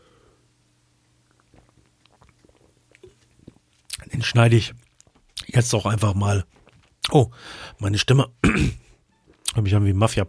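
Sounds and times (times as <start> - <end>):
low hum: 0.0 - 10.2
person taking a quick sip of a drink: 1.1 - 5.5, 6.4 - 7.1
small gulps: 1.1 - 7.8
speech: 4.2 - 4.8, 5.6 - 8.8, 9.6 - 10.2.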